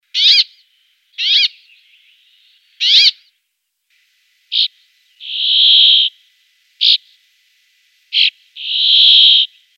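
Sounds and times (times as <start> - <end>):
brambling calling: 1.2 - 1.6, 2.8 - 3.2, 4.5 - 6.1, 6.8 - 7.1, 8.1 - 9.5.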